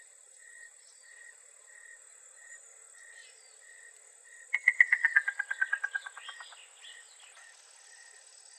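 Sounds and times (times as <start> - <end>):
Yellow-billed cuckoo clucking calls in Arizona: 4.6 - 6.6.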